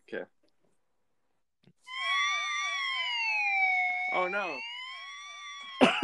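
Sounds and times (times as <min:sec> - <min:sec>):
police siren yelping: 0:01.9 - 0:06.0
speech: 0:04.3 - 0:04.7.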